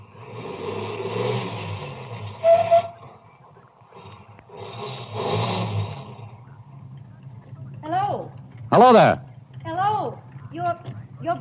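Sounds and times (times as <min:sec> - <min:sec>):
car engine revving as car turns around and drives back: 0:00.0 - 0:09.0
speech: 0:08.7 - 0:09.2.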